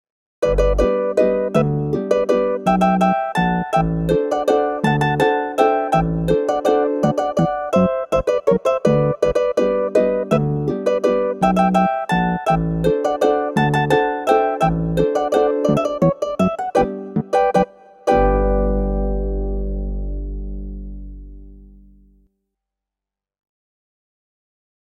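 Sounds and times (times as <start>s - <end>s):
harp bass: 0.4s - 22.2s.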